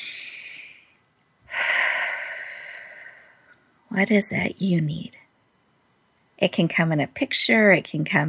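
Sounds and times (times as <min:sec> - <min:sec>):
deep breathing: 0:00.0 - 0:03.6
speech: 0:03.9 - 0:05.2, 0:06.4 - 0:08.2.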